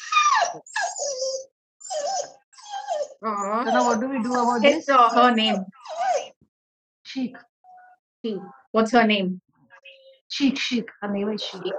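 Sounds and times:
dog whimpering in high-pitched whines: 0.0s - 6.4s, 11.4s - 11.7s
speech: 0.4s - 1.3s, 3.2s - 5.8s, 7.1s - 7.5s, 8.2s - 9.4s, 10.3s - 11.7s.

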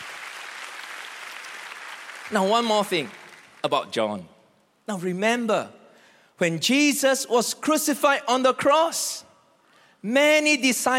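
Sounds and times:
crowd applauding with many hands clapping: 0.0s - 3.7s
speech: 2.3s - 4.3s, 4.9s - 5.8s, 6.4s - 9.3s, 10.0s - 10.9s.

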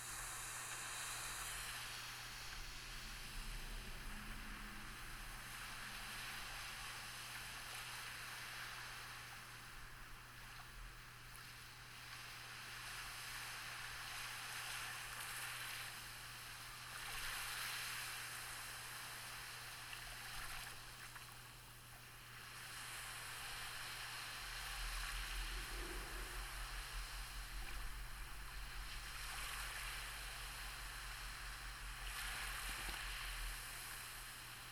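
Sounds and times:
ocean waves washing onto a beach: 0.0s - 10.6s, 11.4s - 21.5s, 22.1s - 34.7s.

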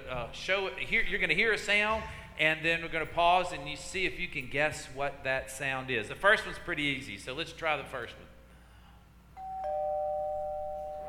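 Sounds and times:
speech: 0.1s - 8.3s
two-tone doorbell chime: 9.4s - 11.0s.

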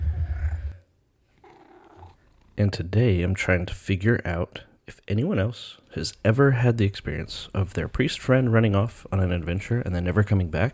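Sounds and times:
cat making a loud low rumbling vocalization: 0.0s - 2.6s
speech: 2.6s - 10.7s.

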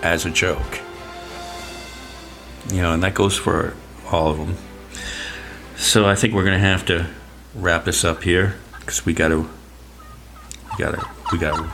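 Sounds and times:
speech: 0.0s - 0.9s, 2.6s - 5.2s, 5.8s - 9.6s, 10.8s - 11.7s
turkeys gobbling: 7.0s - 11.7s
fowl clucking: 7.9s - 11.7s.

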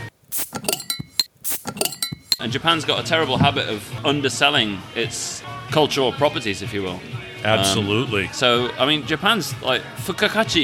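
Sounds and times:
glasses clinking in a toast: 0.6s - 2.4s
speech: 2.4s - 10.6s.

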